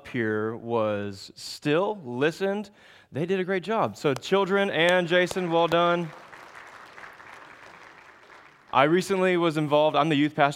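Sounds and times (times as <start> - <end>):
speech: 0.1 - 6.2, 8.7 - 10.5
audience applauding: 4.4 - 9.7.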